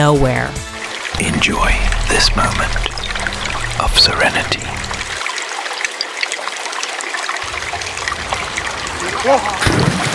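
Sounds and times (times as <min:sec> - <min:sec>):
speech: 0:00.0 - 0:02.9, 0:03.8 - 0:04.9, 0:09.0 - 0:10.1
water trickling: 0:00.8 - 0:09.6
rising tonal sound: 0:01.2 - 0:05.2
water splash: 0:01.2 - 0:05.3.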